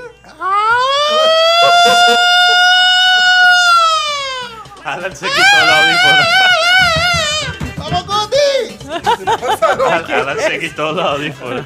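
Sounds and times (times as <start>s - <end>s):
siren wailing and warbling: 0.3s - 7.5s
laughter: 0.8s - 4.2s, 5.3s - 7.5s, 8.7s - 11.6s
speech: 1.8s - 2.5s, 4.9s - 8.0s, 8.9s - 11.6s.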